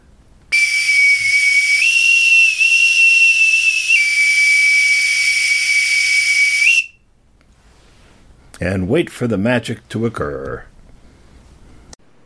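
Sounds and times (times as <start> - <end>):
novelty wiener-shaped toy whistle blown: 0.5 - 7.0
speech: 8.6 - 10.7.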